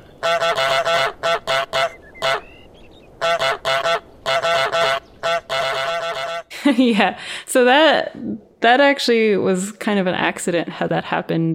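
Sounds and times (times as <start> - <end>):
goose honking sound effect from a video game: 0.2 - 2.6, 3.2 - 6.5
speech: 6.7 - 11.5.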